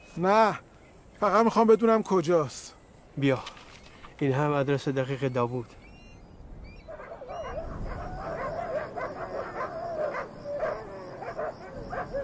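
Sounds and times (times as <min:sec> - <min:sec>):
speech: 0:00.2 - 0:03.6, 0:04.2 - 0:05.8
several dogs barking in a minefield area: 0:06.9 - 0:12.2.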